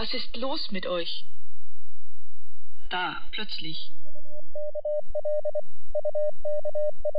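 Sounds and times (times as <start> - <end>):
speech: 0.0 - 1.4, 2.9 - 7.1
Morse code signal tone: 4.1 - 7.1.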